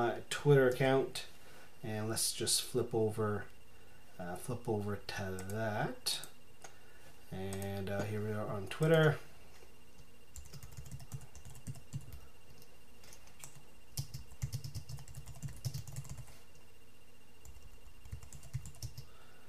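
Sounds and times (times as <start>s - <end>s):
speech: 0.0s - 3.5s, 4.2s - 6.3s, 7.3s - 9.3s
computer keyboard keys clicking as a message is typed: 5.4s - 5.6s, 10.4s - 16.3s, 17.4s - 19.1s.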